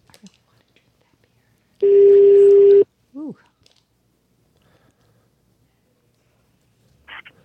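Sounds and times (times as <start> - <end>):
electronic telephone dialing tone: 1.8 - 2.8.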